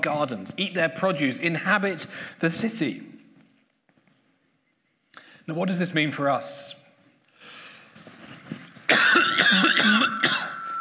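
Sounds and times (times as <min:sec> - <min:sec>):
speech: 0:00.0 - 0:03.2, 0:05.5 - 0:06.8
person in a fit of harsh coughing: 0:08.9 - 0:10.7.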